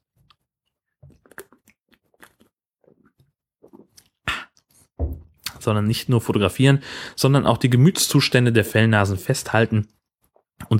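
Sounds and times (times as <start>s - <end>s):
person sipping and swallowing beer: 1.0s - 5.6s, 9.9s - 10.7s
speech: 5.6s - 10.0s.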